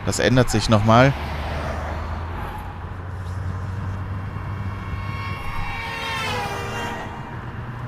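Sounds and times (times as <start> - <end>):
video game car engine roar approaching and passing: 0.0 - 7.8
speech: 0.1 - 1.3.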